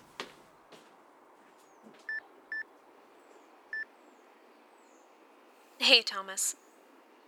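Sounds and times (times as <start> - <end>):
electronic phone beeps: 2.1 - 2.6
speech: 5.8 - 6.6.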